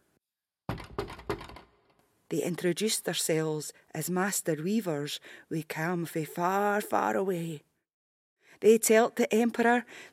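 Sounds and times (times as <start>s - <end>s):
firm knocking on a wooden door: 0.7s - 1.7s
speech: 2.3s - 7.7s, 8.6s - 10.1s.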